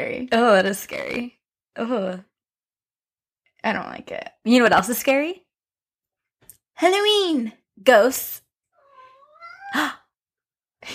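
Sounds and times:
speech: 0:00.1 - 0:02.3, 0:03.6 - 0:05.4, 0:06.8 - 0:08.4, 0:09.7 - 0:10.0
cat meowing: 0:08.8 - 0:10.0.

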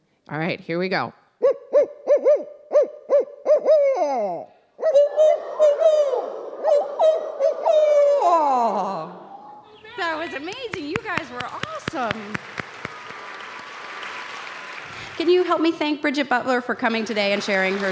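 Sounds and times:
speech: 0:00.3 - 0:01.6, 0:04.1 - 0:04.5, 0:10.3 - 0:12.5, 0:15.2 - 0:17.9
group answering with overlapping sliding imitated owl hoots: 0:01.4 - 0:10.6
person giving rhythmic imitated owl hoots: 0:01.8 - 0:09.8.

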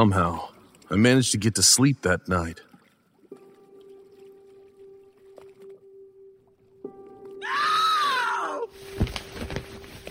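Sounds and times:
speech: 0:00.0 - 0:02.7
drawn-out human cry in the dark of night: 0:07.4 - 0:08.7.

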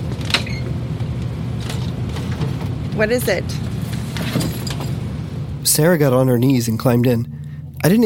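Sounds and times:
steady low rumble: 0:00.0 - 0:08.0
small crawlspace door creaking open with a high strained squeak: 0:00.2 - 0:00.7
speech: 0:03.0 - 0:03.7, 0:05.6 - 0:08.0.

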